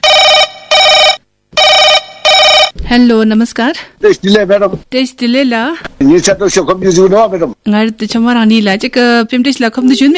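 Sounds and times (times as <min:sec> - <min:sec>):
telephone ringing for incoming call to a radio phone-in programme: 0:00.0 - 0:02.8
speech: 0:02.9 - 0:10.1.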